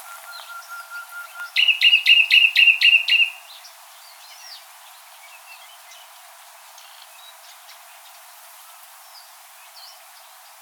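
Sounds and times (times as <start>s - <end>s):
Common nightingale Luscinia megarhynchos song phrase: 0.0s - 3.5s.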